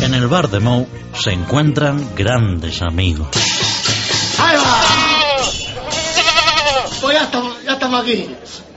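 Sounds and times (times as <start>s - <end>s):
speech: 0.1s - 3.5s, 4.4s - 5.1s, 7.1s - 8.7s
goat bleating: 4.4s - 7.0s.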